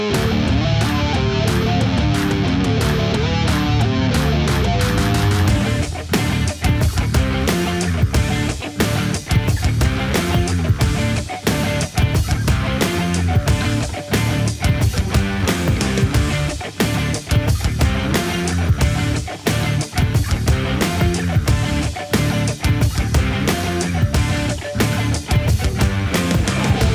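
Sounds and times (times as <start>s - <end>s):
fuzz distortion: 0.1s - 26.9s.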